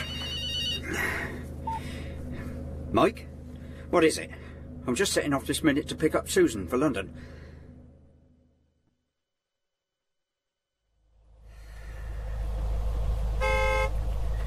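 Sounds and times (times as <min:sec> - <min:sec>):
heavy road traffic in a traffic jam: 0:00.0 - 0:08.6, 0:11.0 - 0:14.4
speech: 0:02.9 - 0:03.3, 0:03.9 - 0:07.4
short car horn blast in a traffic jam: 0:13.4 - 0:14.1.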